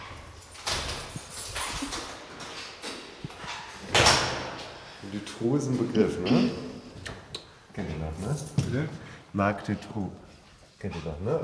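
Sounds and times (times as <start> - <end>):
door opening with scraping rumbling: 0.0 - 4.7
speech: 5.1 - 6.7, 7.8 - 11.4.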